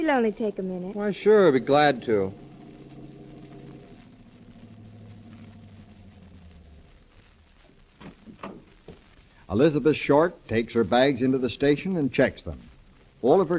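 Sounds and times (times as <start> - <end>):
speech: 0.0 - 2.4, 9.5 - 13.5
car engine humming as the car drives off from a bus station: 1.0 - 7.6
rustling thumps: 2.4 - 9.4.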